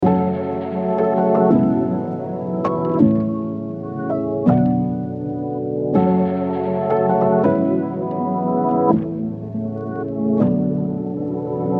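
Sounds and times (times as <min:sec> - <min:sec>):
piano keys playing in F minor at 162 BPM: 0:00.0 - 0:11.7.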